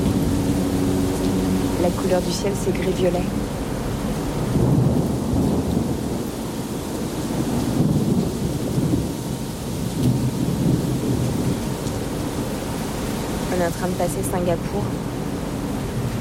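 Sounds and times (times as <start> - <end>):
deep rolling thunder at sea: 0.0 - 13.5
steady hiss of rain at sea: 0.0 - 16.1
speech: 1.8 - 3.6, 13.6 - 15.1.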